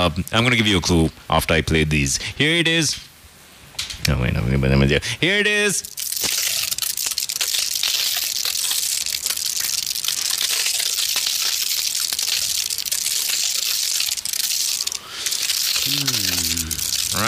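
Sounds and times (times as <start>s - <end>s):
speech: 0.0s - 3.1s, 4.0s - 6.0s, 15.9s - 16.6s
stiff oiled paper crinkling and rustling being handled: 5.9s - 17.2s.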